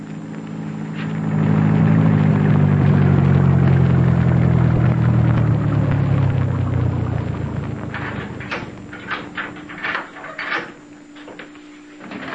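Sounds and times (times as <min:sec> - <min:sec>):
car engine rumbling while driving in through a gate: 0:00.0 - 0:11.2.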